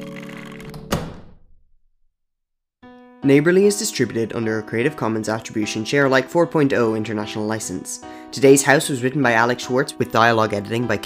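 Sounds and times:
solid thunk of a door shutting: 0:00.7 - 0:01.4
speech: 0:03.2 - 0:11.0.

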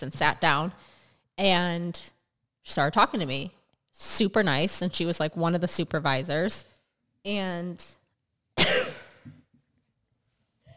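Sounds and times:
speech: 0:00.0 - 0:08.0
woman with a cold coughing: 0:08.6 - 0:09.3.

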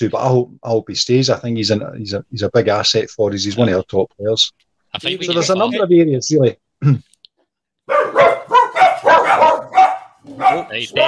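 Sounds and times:
speech: 0:00.0 - 0:07.1, 0:10.3 - 0:11.0
dog yapping: 0:07.9 - 0:11.0.

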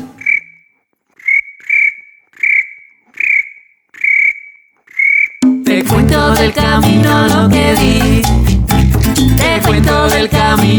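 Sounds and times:
cricket chirping: 0:00.0 - 0:05.5
speech: 0:05.8 - 0:08.4, 0:09.3 - 0:10.7.

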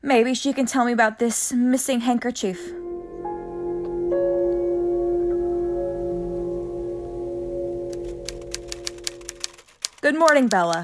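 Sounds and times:
speech: 0:00.0 - 0:02.8, 0:10.1 - 0:10.8
steady low hum: 0:02.4 - 0:09.4
typewriter keys clacking: 0:07.9 - 0:10.8.

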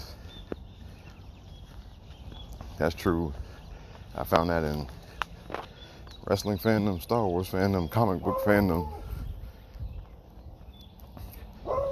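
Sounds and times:
faint shuffle of footsteps walking: 0:00.0 - 0:11.9
speech: 0:02.8 - 0:03.4, 0:04.2 - 0:05.0, 0:06.3 - 0:09.0
dog barking outdoors: 0:08.2 - 0:09.1, 0:11.6 - 0:11.9.

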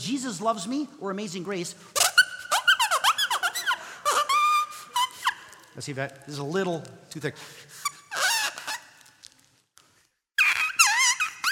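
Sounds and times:
speech: 0:00.0 - 0:02.1, 0:05.8 - 0:07.7
squeaky buzzing whistle blown through a paper wrapper: 0:02.0 - 0:05.8, 0:07.8 - 0:09.2, 0:10.4 - 0:11.5.

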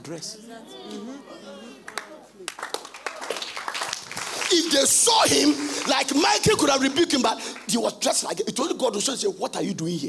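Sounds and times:
speech: 0:00.0 - 0:02.9, 0:04.5 - 0:10.0
audience clapping: 0:01.9 - 0:07.9.

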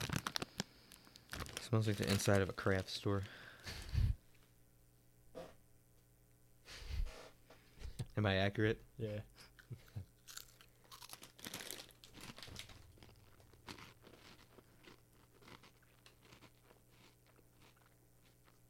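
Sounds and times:
crunching and chewing a crisp sweet snack: 0:00.0 - 0:03.8, 0:09.6 - 0:18.6
speech: 0:01.7 - 0:03.8, 0:08.2 - 0:09.4.

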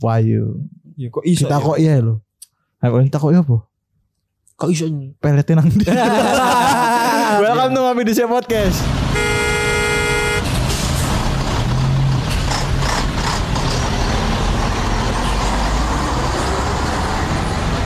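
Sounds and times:
speech: 0:00.0 - 0:02.2, 0:02.8 - 0:03.7, 0:04.6 - 0:09.5
laughter: 0:05.6 - 0:08.0
engines rumbling in dense traffic: 0:08.5 - 0:17.8
hissing road noise: 0:08.6 - 0:17.8
car horn blaring in a traffic jam: 0:09.1 - 0:10.6.

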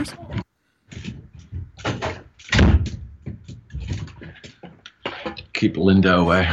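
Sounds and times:
speech: 0:00.0 - 0:00.4, 0:05.6 - 0:06.5
rattling and shuffling door handling noises: 0:00.9 - 0:05.5
door being pushed shut with a heavy thud: 0:01.8 - 0:03.4.

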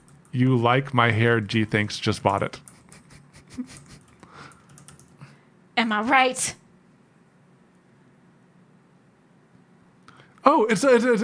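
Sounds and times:
speech: 0:00.4 - 0:02.7, 0:03.6 - 0:03.8, 0:05.8 - 0:06.6, 0:10.4 - 0:11.2
typing on a computer keyboard: 0:03.8 - 0:05.2.

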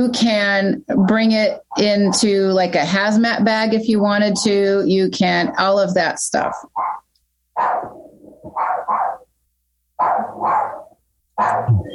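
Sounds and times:
speech: 0:00.0 - 0:07.0
dog barking: 0:06.4 - 0:09.3, 0:10.0 - 0:11.9.

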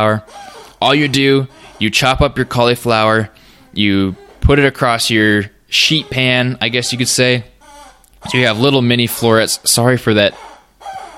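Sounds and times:
speech: 0:00.0 - 0:07.5, 0:08.2 - 0:10.5
squeaky chicken toy squawking while chewed by a dog: 0:00.1 - 0:02.2, 0:06.0 - 0:11.1.

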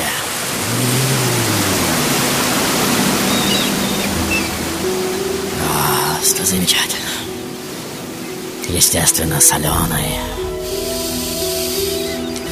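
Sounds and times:
ocean surf rushing: 0:00.0 - 0:12.5
faint low rumbling: 0:00.5 - 0:06.4, 0:09.5 - 0:12.5
speech: 0:06.4 - 0:07.0, 0:08.7 - 0:10.4.

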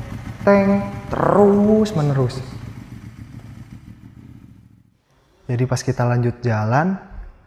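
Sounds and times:
motorcycle engine idling as it warms up: 0:00.0 - 0:05.0
speech: 0:00.4 - 0:02.6, 0:05.5 - 0:07.1.

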